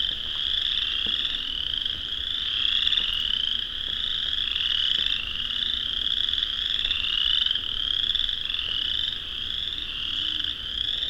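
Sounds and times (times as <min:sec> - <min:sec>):
chorus frogs calling en masse in a swamp at dusk in spring: 0:00.0 - 0:11.0.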